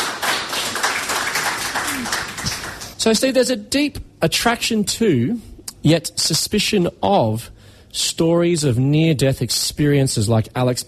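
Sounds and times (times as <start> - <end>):
audience applauding a contestant on a stage quiz show: 0.0 - 3.0
speech: 3.0 - 10.8.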